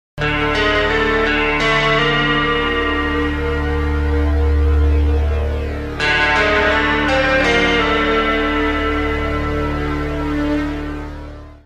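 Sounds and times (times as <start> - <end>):
horror guitar: 0.2 - 11.6.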